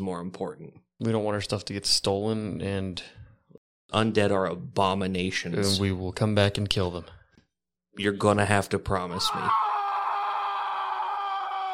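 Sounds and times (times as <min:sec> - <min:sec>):
speech: 0:00.0 - 0:03.2, 0:03.9 - 0:07.2, 0:08.0 - 0:09.7
loud guttural scream of a tortured person: 0:09.2 - 0:11.7.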